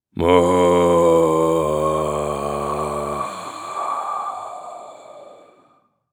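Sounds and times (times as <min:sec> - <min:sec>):
scary ghost moan: 0:00.1 - 0:05.9
scary ghost growl: 0:00.2 - 0:05.6
scary ghost breathing: 0:03.2 - 0:06.1.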